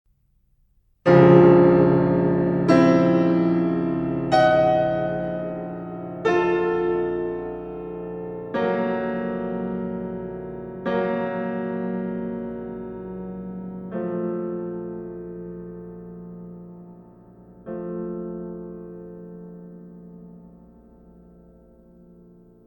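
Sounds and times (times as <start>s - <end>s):
contemporary music: 1.1s - 22.6s.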